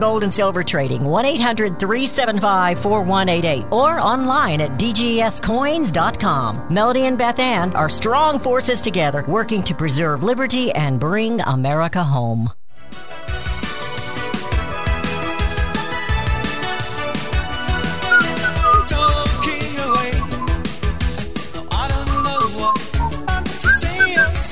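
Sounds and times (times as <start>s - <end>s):
speech: 0.0s - 13.1s
busy musical backing with steady drums and bass: 13.4s - 24.5s
person whistling a melodic tune: 18.1s - 20.6s, 22.0s - 24.5s.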